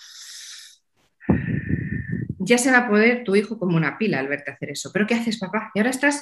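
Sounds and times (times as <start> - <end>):
parent drawing a deep breath in through the nose: 0.0 - 2.3
speech: 2.5 - 6.2.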